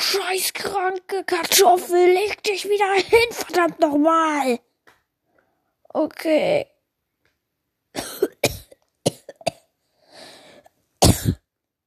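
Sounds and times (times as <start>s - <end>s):
speech: 0.1s - 4.7s, 5.9s - 6.7s
harsh fit of coughing: 8.0s - 9.7s, 11.0s - 11.5s
raspy drawn breath: 9.9s - 10.8s.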